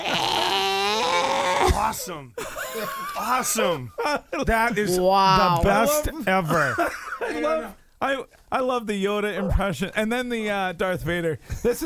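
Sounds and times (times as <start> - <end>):
human voice imitating a Wookiee growl: 0.0 - 2.0
speech: 1.7 - 11.8
laughter: 2.4 - 7.8.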